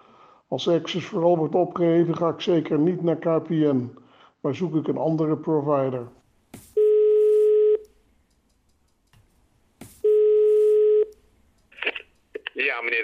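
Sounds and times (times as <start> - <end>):
speech: 0.5 - 6.2
telephone ringing tone of outgoing call: 6.8 - 7.8, 10.0 - 11.1.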